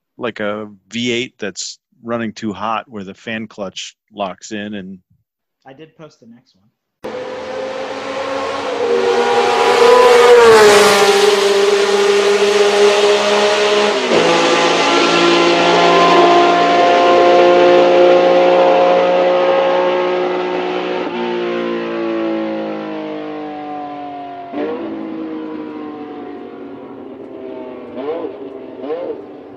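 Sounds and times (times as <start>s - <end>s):
speech: 0.2s - 6.8s
race car engine revving and changing gears: 7.0s - 29.5s.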